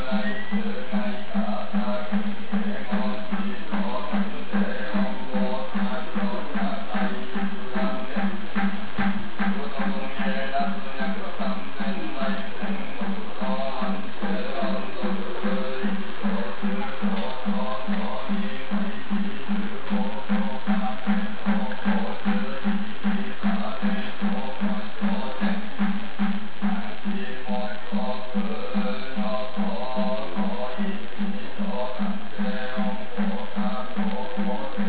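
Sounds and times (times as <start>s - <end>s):
temple chanting in Kyoto: 0.0s - 34.8s.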